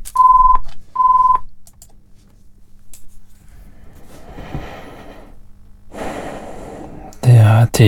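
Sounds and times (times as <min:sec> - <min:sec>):
short steady electronic tones: 0:00.2 - 0:01.4
breathing: 0:03.4 - 0:07.2.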